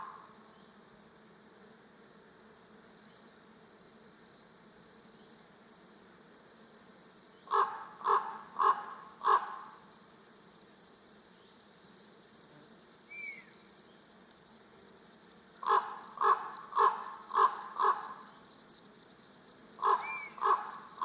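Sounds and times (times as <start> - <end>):
field grasshoppers stridulating in a clearing: 6.2 - 21.0
common raven croaking: 15.6 - 18.1, 19.8 - 21.0.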